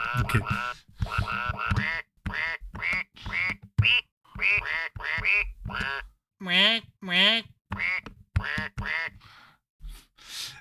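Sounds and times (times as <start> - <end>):
flock of ducks quacking: 0.0 - 9.2
speech: 0.1 - 1.3, 6.5 - 7.5.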